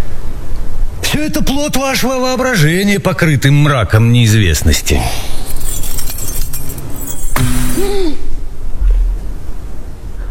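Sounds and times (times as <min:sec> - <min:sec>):
speech: 0:01.1 - 0:05.4
steady room noise: 0:04.3 - 0:10.0
bunch of keys tossed down jangling: 0:05.3 - 0:07.9.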